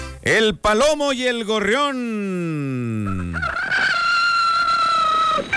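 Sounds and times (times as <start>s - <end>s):
speech: 0.3s - 3.5s
rooster crowing: 3.0s - 5.5s.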